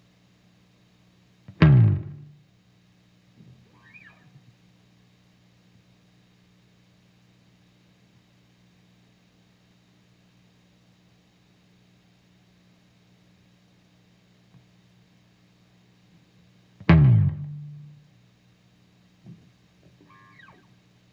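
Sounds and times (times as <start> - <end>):
bass slide: 1.5 - 2.4, 16.9 - 18.0.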